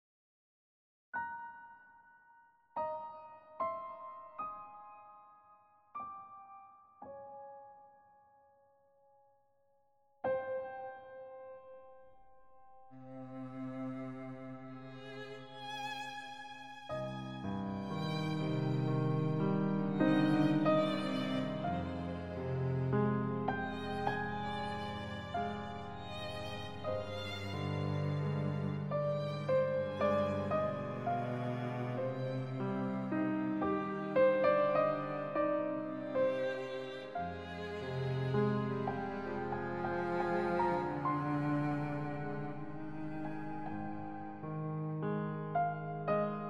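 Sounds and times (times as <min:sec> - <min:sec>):
piano: 0:01.2 - 0:09.6, 0:10.2 - 0:46.4
cello: 0:12.9 - 0:46.4
violin: 0:13.0 - 0:44.4.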